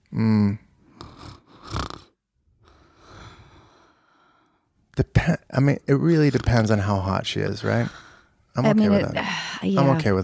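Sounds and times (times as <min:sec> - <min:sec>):
voice imitating a woman's light snore: 0:00.2 - 0:02.1, 0:06.1 - 0:08.0
speech: 0:05.0 - 0:08.0, 0:08.6 - 0:10.2.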